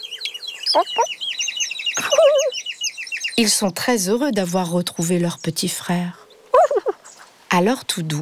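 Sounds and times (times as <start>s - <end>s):
hen clucking: 0.7s - 1.1s, 2.0s - 2.5s, 6.6s - 7.1s
many chicks peeping: 0.7s - 1.1s, 2.0s - 2.6s
speech: 0.7s - 1.2s, 3.4s - 6.2s, 7.5s - 8.2s.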